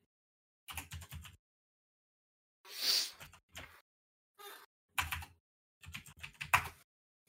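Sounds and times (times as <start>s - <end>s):
forceful typing on a computer keyboard: 0.7s - 1.4s, 5.0s - 6.9s.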